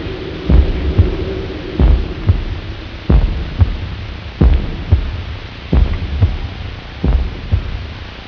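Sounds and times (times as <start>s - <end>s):
heartbeat: 0.0s - 8.0s.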